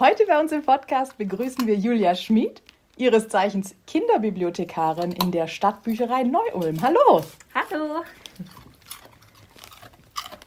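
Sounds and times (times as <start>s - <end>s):
speech: 0.0s - 8.6s
female dog chewing a raw carrot: 1.2s - 1.8s, 4.8s - 10.4s.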